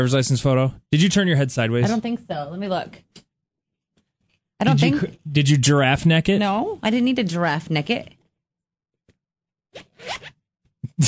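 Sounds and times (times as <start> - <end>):
speech: 0.0 - 3.2, 4.6 - 8.2, 9.7 - 10.4
small wallet zipper being pulled open: 9.7 - 10.4.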